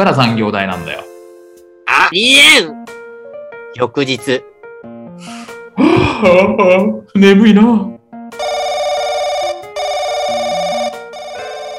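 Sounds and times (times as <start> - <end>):
speech: 0.0 - 1.1, 2.1 - 2.8, 3.7 - 4.5, 5.2 - 7.9
laughter: 5.8 - 7.0
telephone ringing with bright electronic warble: 8.4 - 11.7.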